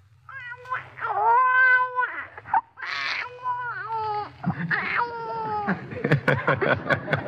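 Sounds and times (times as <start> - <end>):
voice imitating a newborn baby crying: 0.3 - 6.0
laughter: 4.4 - 7.2.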